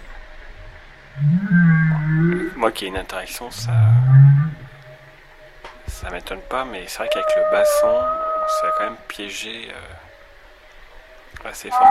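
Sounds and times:
humpback whale moaning call: 1.2s - 2.6s, 3.6s - 5.2s, 6.4s - 9.1s, 11.6s - 11.8s
speech: 2.6s - 4.0s, 6.1s - 10.1s, 11.4s - 11.8s.

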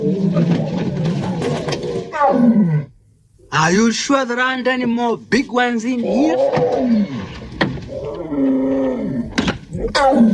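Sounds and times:
lion roaring: 0.0s - 3.0s, 6.0s - 10.3s
speech: 0.4s - 0.9s, 3.5s - 7.4s, 9.8s - 10.3s.

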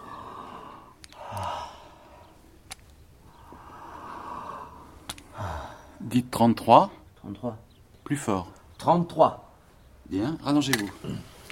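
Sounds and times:
heavy breathing through an open mouth from a patient leaning forward: 0.0s - 2.6s, 3.2s - 6.0s
speech: 6.0s - 9.4s, 10.1s - 11.3s.

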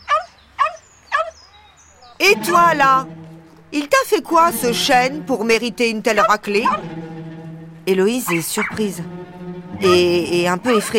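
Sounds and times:
chihuahuas barking and yapping: 0.0s - 2.2s, 6.2s - 6.9s, 8.2s - 8.9s
speech: 2.2s - 7.0s, 7.9s - 10.9s.

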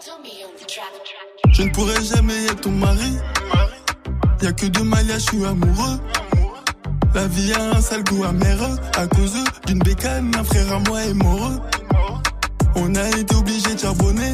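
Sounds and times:
speech: 0.0s - 3.7s, 4.4s - 6.3s, 7.1s - 14.3s
rap song playing: 0.0s - 14.3s
melodic synths: 1.2s - 14.3s
booming sliding bass hits: 1.5s - 2.1s, 4.1s - 6.0s, 6.9s - 13.1s.

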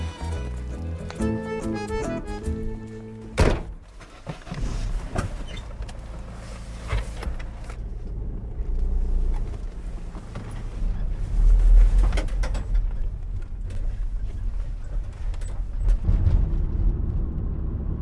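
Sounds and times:
low engine rumble: 0.0s - 17.9s
car door shutting in snowy stormy weather: 3.3s - 3.8s.

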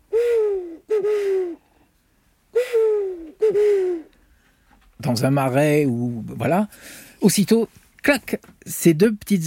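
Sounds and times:
human voice imitating owl hoots: 0.0s - 1.6s, 2.5s - 4.1s
speech: 5.0s - 9.4s.

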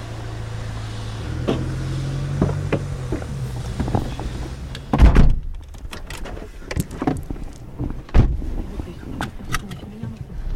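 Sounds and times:
car doors slamming shut: 1.4s - 9.4s
rustling and movement of people climbing into a vehicle: 2.3s - 10.5s.

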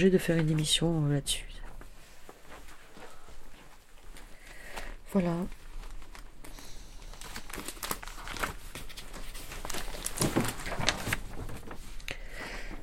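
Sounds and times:
speech: 0.0s - 1.6s, 5.1s - 5.6s
small piece of paper crinkling: 4.1s - 12.1s.

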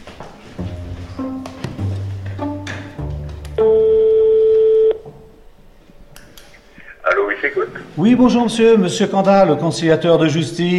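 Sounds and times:
telephone ringback tone while a call to a neighbour connects: 3.6s - 5.0s
speech: 7.5s - 10.7s.

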